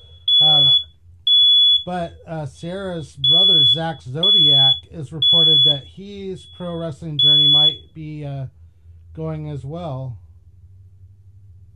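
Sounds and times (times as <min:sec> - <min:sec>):
fire alarm blaring a high-pitched tone: 0:00.0 - 0:02.2, 0:03.0 - 0:08.0
speech: 0:01.8 - 0:08.6, 0:09.2 - 0:10.2.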